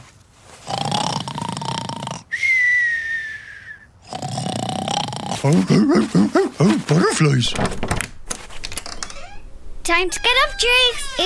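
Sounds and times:
cartoonish snoring of someone fast asleep in bed: 0:00.7 - 0:02.3, 0:04.1 - 0:05.5
speech: 0:05.5 - 0:08.0, 0:09.9 - 0:11.2.

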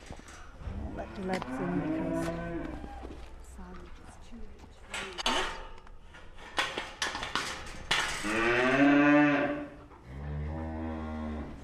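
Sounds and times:
farmyard clatter: 0:00.0 - 0:10.1
pedigree Limousin suckler cows bawling for nuts: 0:01.0 - 0:03.0, 0:08.2 - 0:11.6
speech: 0:01.2 - 0:02.7.

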